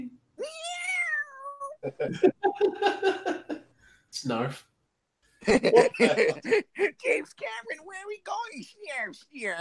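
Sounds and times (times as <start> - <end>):
person mimicking an upset cat being sprayed with water: 0.4 - 2.2
laughter: 1.8 - 3.6, 5.5 - 7.2
speech: 2.0 - 3.2, 4.2 - 4.7, 5.4 - 9.5.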